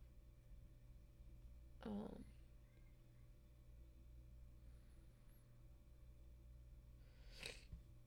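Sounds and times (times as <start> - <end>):
quiet room hiss: 0.0 - 8.0
breathy sniffs while holding back a sneeze: 7.1 - 7.7.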